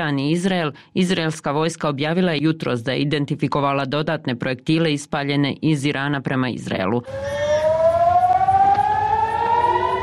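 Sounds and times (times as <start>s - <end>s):
speech: 0.0s - 7.5s
air raid siren warning of a rocket attack at the port of Haifa: 7.1s - 10.0s.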